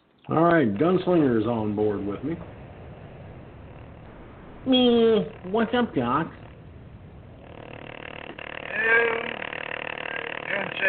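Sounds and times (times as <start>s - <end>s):
speech: 0.3s - 2.6s, 4.6s - 6.5s
small desk fan by a computer buzzing: 0.6s - 10.8s
faint voice murmuring: 8.6s - 10.8s.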